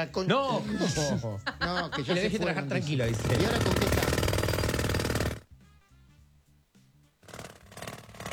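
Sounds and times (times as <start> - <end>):
speech: 0.0 - 4.2
laughter: 0.4 - 4.1
jackhammer breaking up the sidewalk for fiber optic cable installation: 3.1 - 5.4, 7.2 - 8.3.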